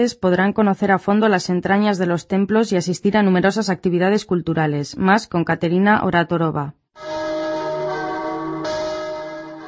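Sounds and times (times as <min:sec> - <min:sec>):
speech: 0:00.0 - 0:07.1
church bells ringing in a peal: 0:07.0 - 0:09.6.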